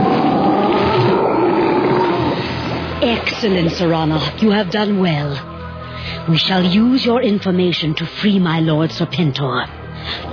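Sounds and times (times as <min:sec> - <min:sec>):
deep sea monster roar with low growling: 0:00.0 - 0:03.0
speech: 0:03.3 - 0:05.5, 0:06.3 - 0:10.3.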